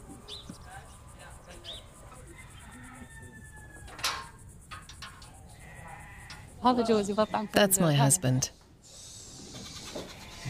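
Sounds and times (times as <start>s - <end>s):
hiss: 0.0s - 10.4s
sheep bleating while being fed in a stall: 5.6s - 7.7s, 9.6s - 10.4s
speech: 6.6s - 8.6s.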